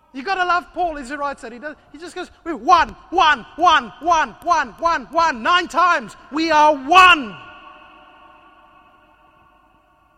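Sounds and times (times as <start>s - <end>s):
hollow ringing echo in a room: 0.0s - 10.1s
speech: 0.1s - 7.5s.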